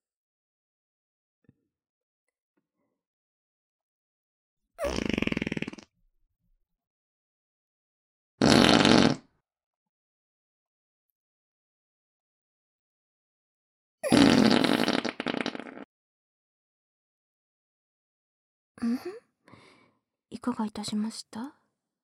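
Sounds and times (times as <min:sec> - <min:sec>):
long loud sputtering fart during a prayer: 0:04.8 - 0:05.9, 0:08.4 - 0:09.3, 0:14.0 - 0:15.9
speech: 0:18.8 - 0:19.2, 0:20.3 - 0:21.6.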